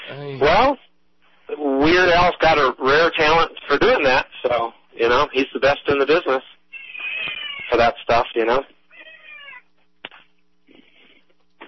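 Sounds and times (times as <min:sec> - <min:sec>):
low steady hum: 0:00.0 - 0:11.6
speech: 0:00.1 - 0:00.8, 0:01.8 - 0:06.5, 0:07.2 - 0:08.8
cats meowing to be fed beside a stove: 0:06.7 - 0:07.8, 0:08.9 - 0:09.8.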